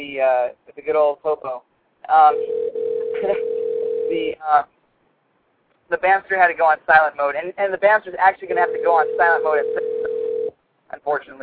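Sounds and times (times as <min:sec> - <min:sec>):
speech: 0:00.0 - 0:04.8, 0:05.9 - 0:09.8, 0:10.9 - 0:11.4
low-pitched telephone dialing tone: 0:02.4 - 0:04.2, 0:08.5 - 0:10.5.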